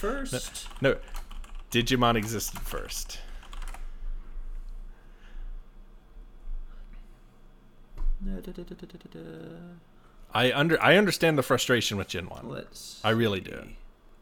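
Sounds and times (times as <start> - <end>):
speech: 0.0 - 3.3, 8.2 - 13.8
typing on a computer keyboard: 0.4 - 3.8.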